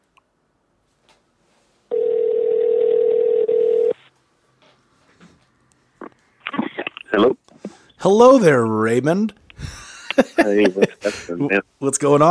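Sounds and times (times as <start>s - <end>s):
steady buzzing telephone ringing tone: 1.9s - 4.0s
person talking on the telephone line: 6.4s - 7.8s
speech: 7.2s - 7.4s, 8.0s - 9.4s, 10.2s - 12.3s
laughter: 9.6s - 11.3s.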